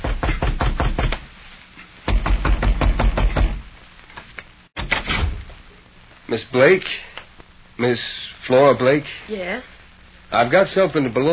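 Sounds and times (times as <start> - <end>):
rapid firm knocking on a front door: 0.0 - 1.2, 2.1 - 3.6
speech: 6.3 - 7.0, 7.8 - 9.7, 10.3 - 11.3.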